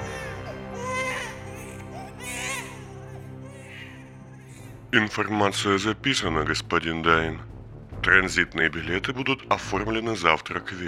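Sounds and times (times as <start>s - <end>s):
baby crying used as an acoustic sound weapon: 0.0s - 4.9s
speech: 4.9s - 10.8s.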